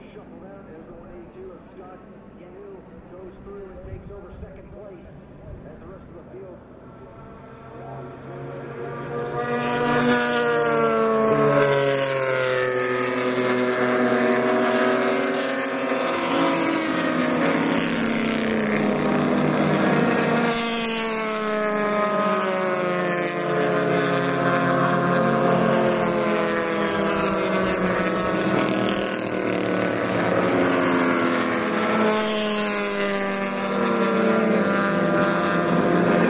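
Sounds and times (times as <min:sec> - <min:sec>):
racing vehicles passing on a circuit's back straight: 0:00.0 - 0:36.2
wind noise: 0:03.5 - 0:04.8.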